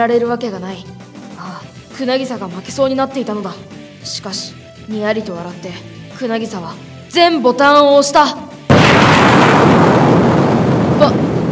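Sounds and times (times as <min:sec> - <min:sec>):
speech: 0:00.0 - 0:01.0, 0:02.0 - 0:08.5, 0:11.0 - 0:11.2
crackling: 0:08.7 - 0:11.5
television explosion sound effect: 0:08.7 - 0:11.5.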